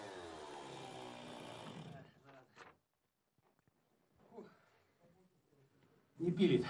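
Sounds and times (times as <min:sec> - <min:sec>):
chainsaw cutting through ice to free a ship's propeller shaft: 0:00.0 - 0:02.2.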